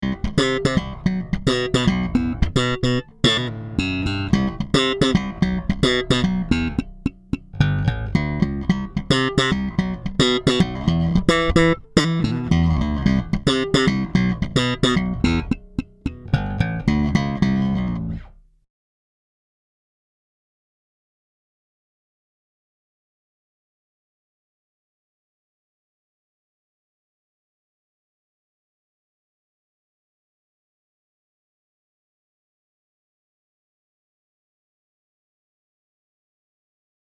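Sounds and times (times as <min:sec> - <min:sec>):
Sadowsky NYC 5 bass slap passive tone: 0:00.0 - 0:18.5.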